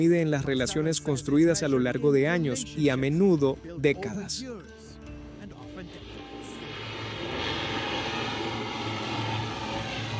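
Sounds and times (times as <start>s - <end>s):
speech: 0.0s - 4.8s
aircraft engine roar of an airplane landing: 5.3s - 10.1s.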